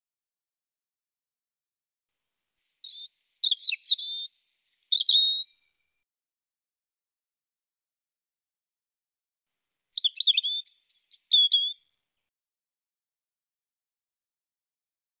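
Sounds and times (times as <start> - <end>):
European robin song: 2.6 - 6.0, 9.9 - 11.9.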